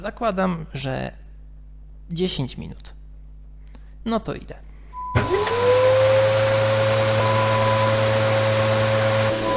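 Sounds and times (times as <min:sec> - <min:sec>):
speech: 0:00.0 - 0:01.2, 0:02.1 - 0:03.0, 0:04.0 - 0:05.4
vacuum cleaner running while vacuuming a room: 0:05.2 - 0:09.5.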